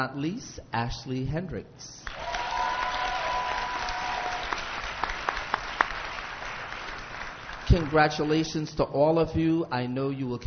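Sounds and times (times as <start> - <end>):
speech: 0.0 - 2.3, 7.7 - 10.4
individual sharp claps: 2.0 - 8.4
audience applause: 2.1 - 8.4.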